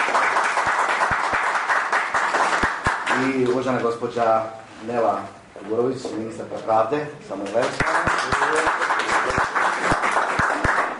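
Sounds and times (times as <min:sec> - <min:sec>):
audience at a formal event applauding a government minister: 0:00.0 - 0:03.4, 0:07.7 - 0:10.9
speech: 0:03.2 - 0:08.9.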